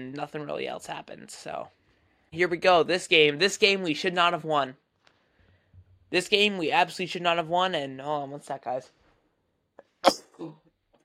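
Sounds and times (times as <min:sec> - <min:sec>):
speech: 0:00.0 - 0:04.8, 0:06.1 - 0:09.0, 0:10.0 - 0:10.6
sneeze: 0:10.0 - 0:10.7.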